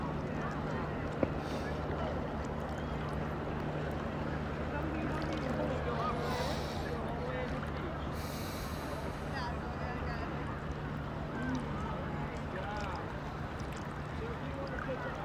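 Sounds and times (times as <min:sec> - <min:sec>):
water washing at a lake or river shore: 0:00.0 - 0:15.2.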